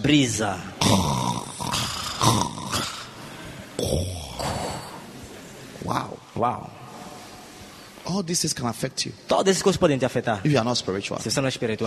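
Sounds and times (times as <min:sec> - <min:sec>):
speech: 0:00.0 - 0:01.1, 0:03.8 - 0:04.2, 0:05.8 - 0:06.8, 0:08.1 - 0:11.8
person imitating a man snoring as he sleeps in a boat: 0:00.8 - 0:03.2, 0:03.8 - 0:05.0.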